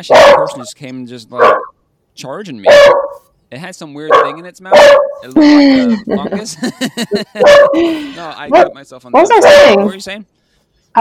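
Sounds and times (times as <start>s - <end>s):
dog barking: 0.0s - 0.7s, 1.3s - 1.7s, 2.6s - 3.2s, 4.0s - 5.3s, 7.3s - 7.8s, 8.4s - 10.0s
speech: 0.0s - 10.3s
laughter: 5.3s - 8.6s.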